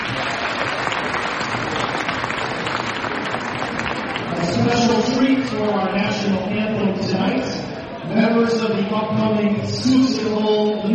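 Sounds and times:
audience applause at a volleyball match: 0.0 - 5.5
speech: 4.7 - 10.9.

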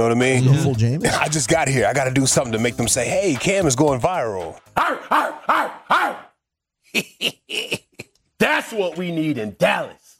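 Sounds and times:
speech: 0.0 - 6.2, 6.9 - 10.1
man on television imitating a barking dog: 4.8 - 6.4.

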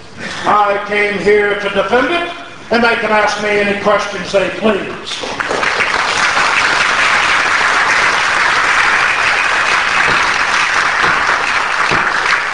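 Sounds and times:
speech: 0.4 - 5.4
large crowd in bleachers applauding at a courtroom trial in Tennessee: 5.2 - 12.5.

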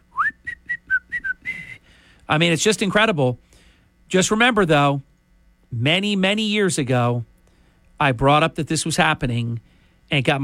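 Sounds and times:
person whistling a tune: 0.1 - 1.8
speech: 2.3 - 3.4, 4.1 - 5.1, 5.7 - 7.3, 8.0 - 10.4.

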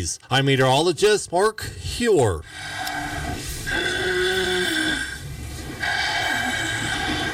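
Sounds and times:
speech: 0.0 - 3.9
snoring from obstructive sleep apnea: 2.5 - 7.3.

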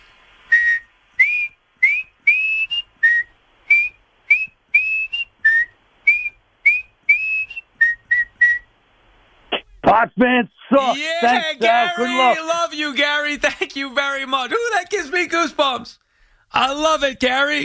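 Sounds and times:
person whistling a lively tune: 0.5 - 8.6
speech: 10.0 - 17.6.

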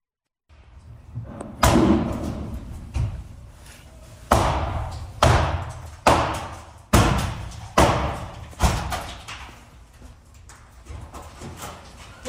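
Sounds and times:
loud heavy bangs on a door: 1.6 - 2.6, 4.3 - 9.2.

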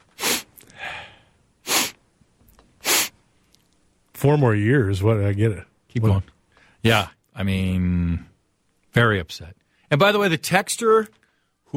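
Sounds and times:
person imitating nasal sniffing: 0.0 - 2.0, 2.8 - 3.2
speech: 4.2 - 8.3, 9.0 - 11.7.

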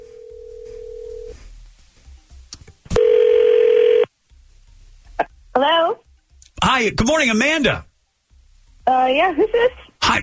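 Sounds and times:
telephone dial tone: 0.0 - 1.3, 3.0 - 4.1
speech: 6.8 - 7.9, 8.9 - 10.2.

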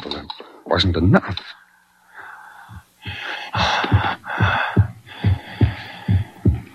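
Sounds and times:
speech: 0.7 - 1.6
creature breathing heavily with rasping labored breaths: 2.1 - 6.7
steady throbbing heartbeat: 2.7 - 6.7.

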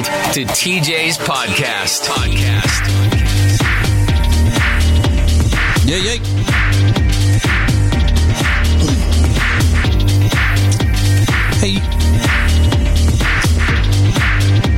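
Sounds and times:
loud music with a driving beat and heavy bass: 0.0 - 14.7
speech: 0.3 - 3.8, 5.9 - 7.6.

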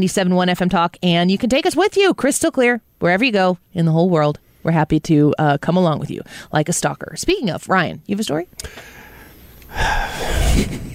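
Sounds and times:
speech: 0.0 - 9.0, 9.7 - 10.9
big gasping breath: 8.6 - 10.9.

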